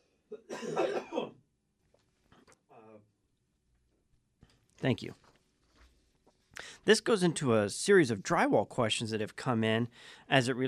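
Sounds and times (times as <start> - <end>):
throat clearing and coughing from someone with something stuck in the throat: 0.3 - 1.4
speech: 0.4 - 1.1, 4.8 - 5.2, 6.9 - 10.6.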